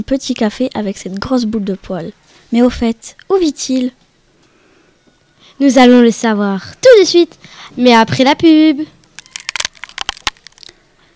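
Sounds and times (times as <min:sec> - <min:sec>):
speech: 0:00.0 - 0:04.0, 0:05.6 - 0:09.0
crunchy snack being bitten and chewed: 0:09.0 - 0:10.8.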